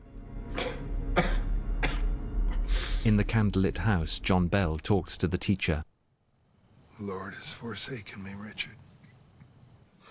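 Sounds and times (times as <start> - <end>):
man coughing up blood onto his hands and handkerchief: 0.5 - 2.6
speech: 3.0 - 5.9, 7.0 - 8.9.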